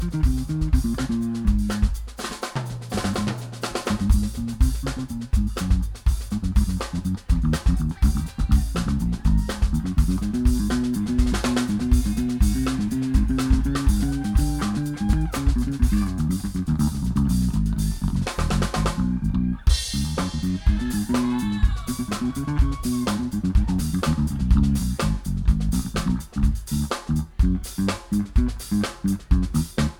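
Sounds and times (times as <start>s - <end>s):
bass: 0.0s - 29.9s
drums: 0.0s - 29.9s
laughter: 7.6s - 16.7s, 17.8s - 24.6s.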